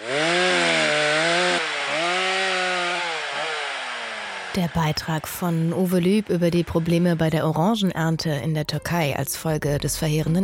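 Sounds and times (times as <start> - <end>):
chainsaw felling orange trees in Turkey: 0.0 - 7.4
speech: 4.6 - 10.4.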